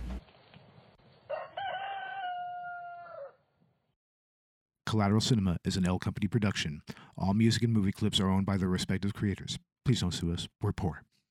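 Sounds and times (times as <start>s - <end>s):
rooster crowing cock-a-doodle-doo: 1.3s - 3.4s
speech: 4.9s - 11.1s.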